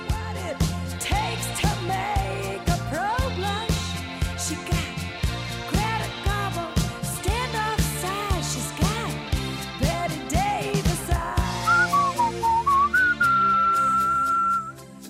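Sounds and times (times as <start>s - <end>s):
upbeat pop backing track: 0.0s - 15.0s
bright whistled melody: 11.5s - 15.0s.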